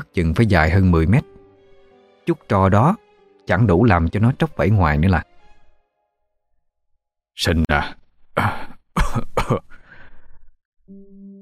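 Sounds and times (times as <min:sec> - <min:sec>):
speech: 0:00.1 - 0:01.3, 0:02.3 - 0:05.3, 0:07.4 - 0:08.0
man coughing: 0:08.4 - 0:09.9.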